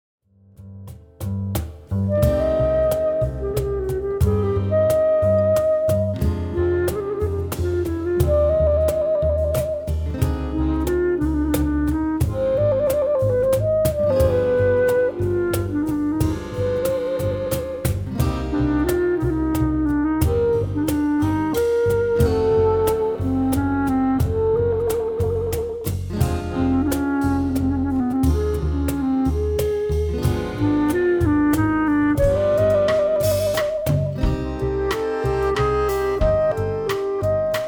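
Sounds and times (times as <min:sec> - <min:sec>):
clarinet: 0:02.0 - 0:37.6.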